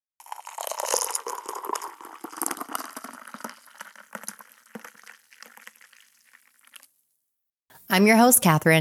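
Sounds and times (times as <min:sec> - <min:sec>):
coffee pouring into a cup: 0:00.2 - 0:07.0
speech: 0:07.9 - 0:08.7.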